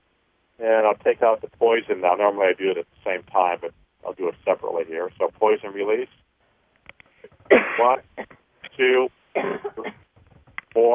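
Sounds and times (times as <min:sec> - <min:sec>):
speech: 0:00.6 - 0:06.2, 0:07.5 - 0:10.0, 0:10.8 - 0:10.9
person clearing their throat: 0:07.4 - 0:08.4, 0:09.4 - 0:10.1
person coughing harshly during an exercise session: 0:07.4 - 0:08.4, 0:09.4 - 0:10.1.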